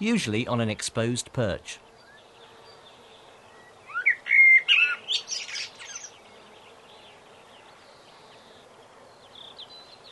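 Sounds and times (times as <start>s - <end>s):
speech: 0.0s - 1.9s
common blackbird singing: 2.0s - 10.1s.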